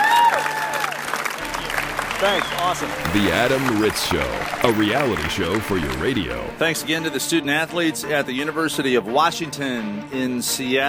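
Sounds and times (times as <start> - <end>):
crowd applauding: 1.1 - 6.7
speech: 2.2 - 10.8.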